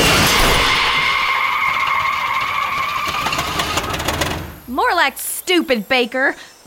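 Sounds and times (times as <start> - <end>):
car tires squealing skidding to a stop on a winding country road: 0.0 - 4.4
car engine grinding after its clutch blows out: 0.0 - 4.6
speech: 5.0 - 6.6.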